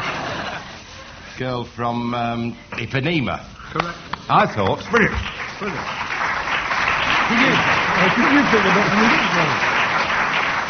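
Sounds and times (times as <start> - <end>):
speech: 1.4 - 6.2, 7.3 - 9.8
loud applause from a large audience: 4.8 - 10.6.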